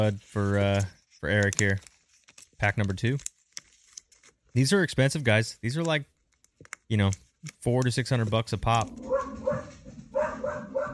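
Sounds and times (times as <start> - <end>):
speech: 0.0 - 1.9, 2.6 - 3.3, 4.5 - 6.1, 6.9 - 9.6
dog barking: 8.9 - 10.9.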